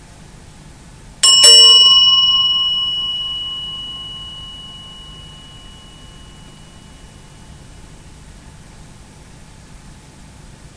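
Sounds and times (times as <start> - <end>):
small bell struck once ringing: 1.2 - 7.7.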